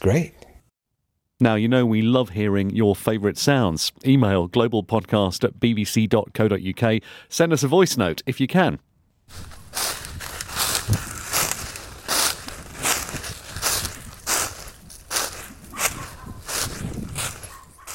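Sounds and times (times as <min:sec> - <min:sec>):
speech: 0:00.0 - 0:00.4, 0:01.4 - 0:09.6, 0:10.9 - 0:11.1
footsteps crunching over dry crispy leaves: 0:09.3 - 0:17.9.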